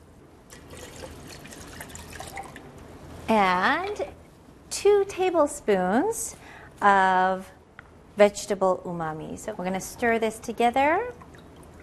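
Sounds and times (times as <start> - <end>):
water poured into a pot to make a soup base: 0.5 - 2.7
speech: 3.3 - 4.2, 4.8 - 7.6, 8.2 - 11.2.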